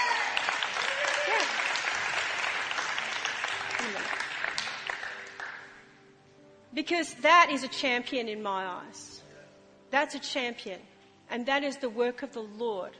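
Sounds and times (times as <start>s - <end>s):
audience applause: 0.0s - 5.8s
speech: 6.8s - 9.2s, 9.9s - 12.9s.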